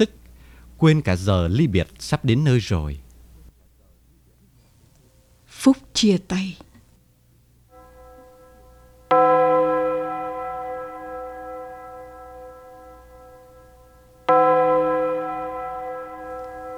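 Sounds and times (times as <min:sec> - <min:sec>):
speech: 0:00.8 - 0:03.0, 0:05.6 - 0:06.7
bronze church bell tolling at a farewell ceremony: 0:07.7 - 0:16.7.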